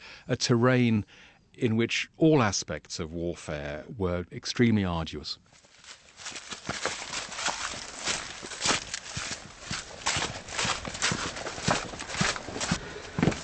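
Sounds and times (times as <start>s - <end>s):
speech: 0.2s - 5.6s
footsteps echoing in an underground stone corridor cut into a mountain: 5.6s - 13.4s.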